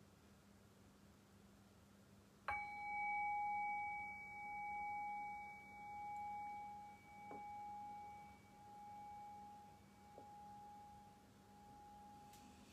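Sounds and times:
meditation bell struck to begin a guided meditation: 2.5 - 12.7.

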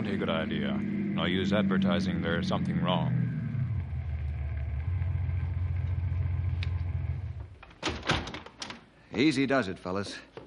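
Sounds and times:
speech: 0.0 - 3.3, 9.1 - 10.4
car engine rumble coasting to a stop: 0.0 - 7.6.

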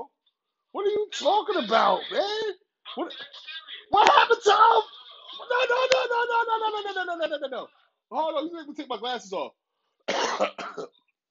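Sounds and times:
speech: 0.8 - 11.0
laughter: 1.5 - 7.5
person coughing harshly: 2.1 - 2.5, 10.1 - 10.9
person throat clearing: 10.1 - 10.9.

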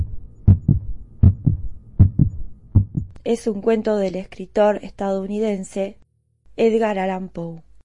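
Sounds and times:
deep thumping heartbeat sound effect: 0.0 - 3.1
speech: 3.3 - 6.0, 6.6 - 7.7.

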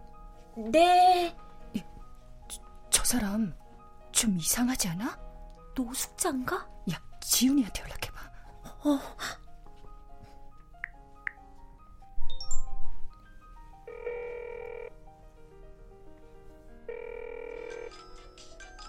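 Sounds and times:
soft tonal music: 0.0 - 18.8
speech: 0.6 - 1.4, 3.1 - 3.6, 4.2 - 5.2, 5.8 - 8.1, 8.8 - 9.4
phone ringing in electronic bursts: 13.8 - 15.0, 16.9 - 18.8.

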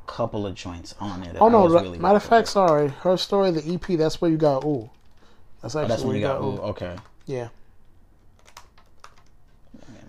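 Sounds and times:
speech: 0.2 - 5.0, 5.6 - 7.6
typing on a computer keyboard: 3.6 - 5.4, 6.6 - 7.5, 8.2 - 9.5.

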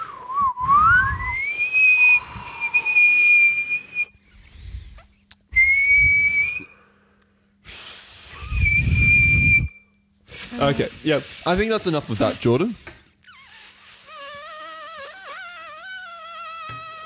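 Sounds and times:
person whistling: 0.0 - 4.2, 5.6 - 6.8, 8.3 - 9.9
speech: 10.6 - 12.9.

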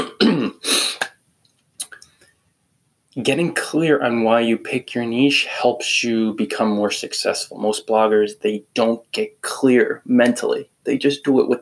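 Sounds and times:
person clearing throat in the morning: 0.0 - 1.1
speech: 3.2 - 11.5.

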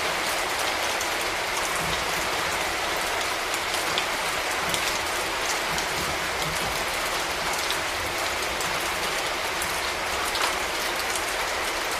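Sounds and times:
rain falling: 0.0 - 11.9
individual raindrop taps: 3.2 - 10.6.

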